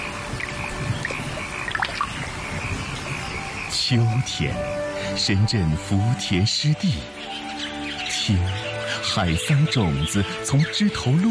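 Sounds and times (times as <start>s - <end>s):
raindrops splashing on early rice paddy: 0.0s - 3.1s
faint chirping calls: 0.0s - 11.2s
speech: 3.9s - 7.2s, 8.3s - 11.2s.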